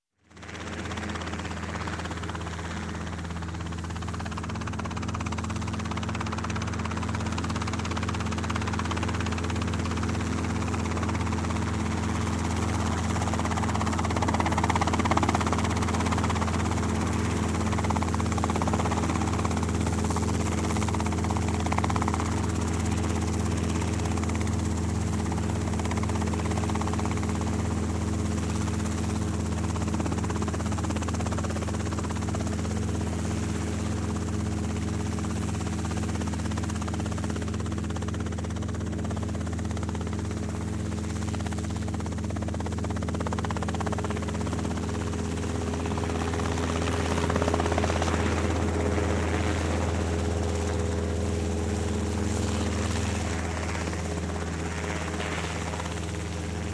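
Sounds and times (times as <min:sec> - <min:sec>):
Robinson helicopter hovering and passing: 0:00.2 - 0:56.7.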